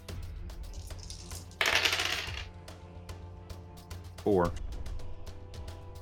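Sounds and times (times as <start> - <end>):
dice clattering across a hard tabletop: 0.7 - 2.5
speech: 4.2 - 4.6.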